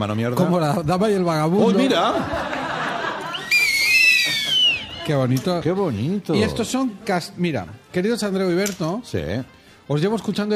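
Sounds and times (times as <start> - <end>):
speech: 0.0 - 2.5, 5.1 - 10.5
laughter: 1.6 - 5.4
two shrill whistles knotted together blowing: 3.2 - 5.1.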